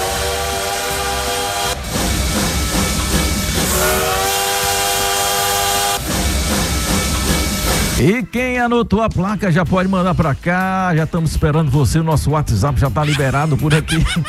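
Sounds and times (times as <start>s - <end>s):
steam train whistle blowing: 0.0s - 6.3s
rumbling hissing steam engine chugging: 0.0s - 8.1s
speech: 8.0s - 14.2s
laughter: 13.0s - 14.2s.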